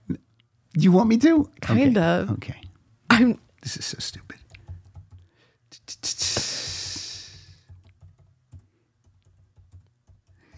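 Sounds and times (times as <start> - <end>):
speech: 0.8 - 2.6, 3.2 - 4.4
typing on a computer keyboard: 4.4 - 5.3, 7.5 - 10.5.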